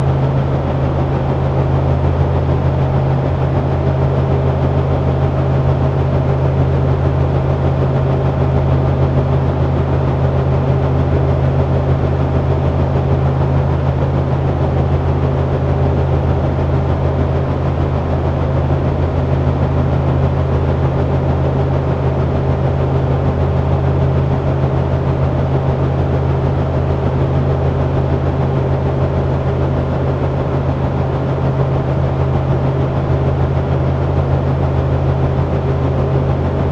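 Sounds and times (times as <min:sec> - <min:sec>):
big fan: 0:00.0 - 0:36.7.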